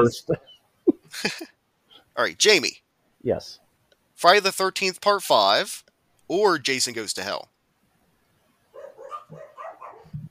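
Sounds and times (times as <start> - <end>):
speech: 0.0 - 0.5, 1.1 - 1.6, 2.2 - 3.6, 4.2 - 7.5
dog barking: 8.7 - 10.2.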